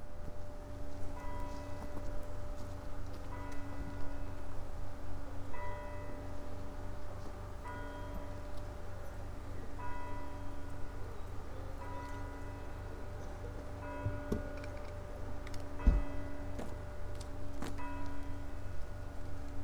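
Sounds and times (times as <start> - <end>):
church bells ringing: 0.1 - 19.4.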